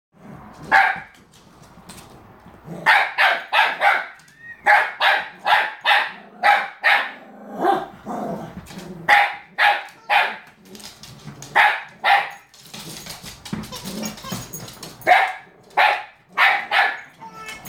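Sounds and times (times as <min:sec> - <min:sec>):
dogs barking: 0:00.7 - 0:01.1, 0:02.8 - 0:07.9, 0:09.1 - 0:10.6, 0:11.5 - 0:12.5, 0:13.9 - 0:17.2.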